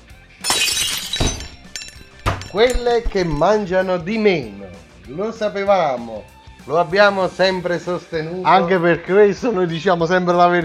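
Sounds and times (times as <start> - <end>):
glass shattering with tinkling shards: 0.4 - 3.6
speech: 2.5 - 10.6.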